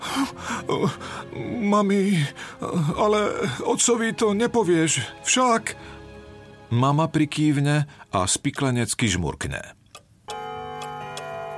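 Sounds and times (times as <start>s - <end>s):
speech: 0.2s - 6.0s, 6.7s - 9.8s
cuckoo clock ticking: 9.9s - 11.5s.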